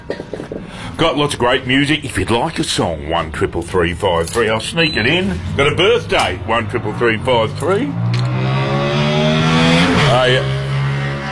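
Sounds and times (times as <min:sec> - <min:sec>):
speech: 0:01.0 - 0:08.6, 0:10.1 - 0:10.6
motorbike engine passing on a busy Saturday morning street: 0:04.8 - 0:11.3.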